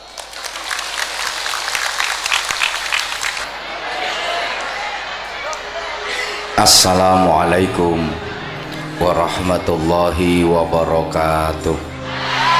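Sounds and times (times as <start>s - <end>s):
audience applause: 0.0s - 5.9s
speech: 6.6s - 8.2s, 9.0s - 11.9s.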